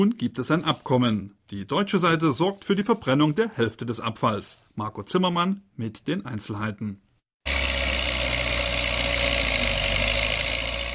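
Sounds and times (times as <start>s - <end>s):
speech: 0.0s - 7.0s
yellow wheel loader engine working on a rubbish heap of plastic and textile waste: 7.5s - 10.9s.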